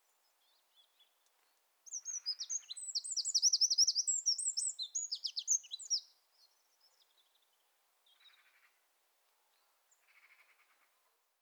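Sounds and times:
Eurasian wren Troglodytes troglodytes song: 0:01.9 - 0:06.1.

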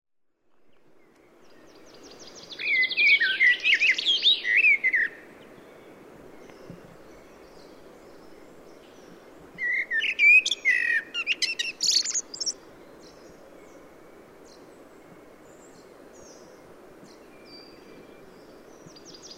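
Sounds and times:
common blackbird singing: 0:02.0 - 0:05.2, 0:09.6 - 0:12.6.

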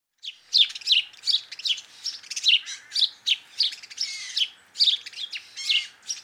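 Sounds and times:
house sparrow Passer domesticus chirping: 0:00.2 - 0:06.2.

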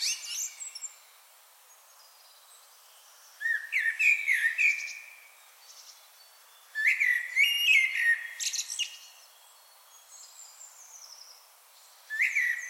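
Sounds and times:
common blackbird Turdus merula song: 0:00.0 - 0:12.6.

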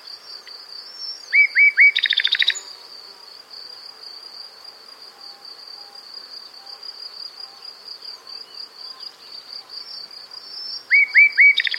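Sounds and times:
common nightingale Luscinia megarhynchos singing: 0:00.9 - 0:02.7, 0:09.8 - 0:11.7.

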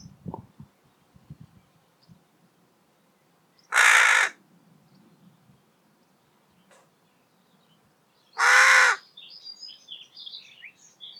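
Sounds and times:
carrion crow cawing, Corvus corone: 0:03.7 - 0:04.4, 0:08.4 - 0:09.0
small bird twittering: 0:08.3 - 0:11.1.

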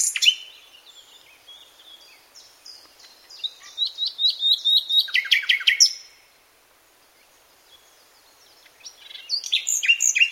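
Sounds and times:
common nightingale Luscinia megarhynchos singing: 0:00.0 - 0:06.4, 0:07.0 - 0:10.2.

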